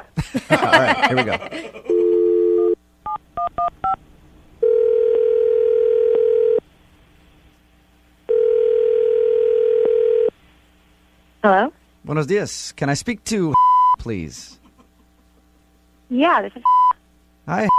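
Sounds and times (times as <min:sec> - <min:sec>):
speech: 0:00.2 - 0:01.8, 0:11.4 - 0:14.6, 0:16.1 - 0:16.7, 0:17.5 - 0:17.7
laughter: 0:00.2 - 0:02.1, 0:14.5 - 0:15.5
telephone dial tone: 0:01.9 - 0:02.8, 0:04.6 - 0:06.6, 0:08.3 - 0:10.3.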